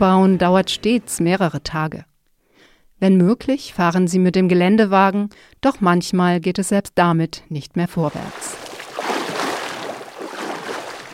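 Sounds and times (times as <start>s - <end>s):
speech: 0.0s - 2.1s, 3.0s - 8.7s
dugout canoe being paddled on a river: 8.1s - 11.1s.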